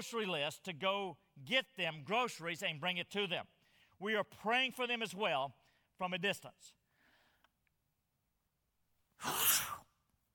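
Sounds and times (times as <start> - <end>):
speech: 0.0 - 6.8, 9.2 - 9.5
person sneezing: 9.2 - 10.0.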